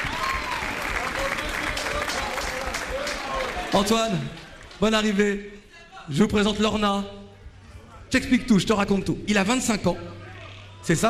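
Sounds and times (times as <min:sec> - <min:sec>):
faint voices and cheers: 0:00.0 - 0:04.6
audience applauding: 0:00.0 - 0:05.2
speech: 0:03.7 - 0:07.2, 0:08.1 - 0:10.2, 0:10.8 - 0:11.0.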